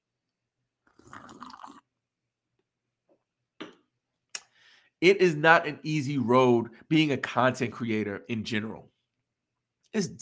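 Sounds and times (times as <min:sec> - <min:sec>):
person slurping coffee: 0:00.9 - 0:01.9
speech: 0:05.0 - 0:08.9, 0:09.9 - 0:10.2.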